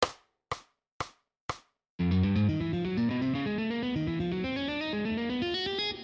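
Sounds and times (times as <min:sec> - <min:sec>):
guitar string skipping at 120 BPM: 0:02.0 - 0:06.0.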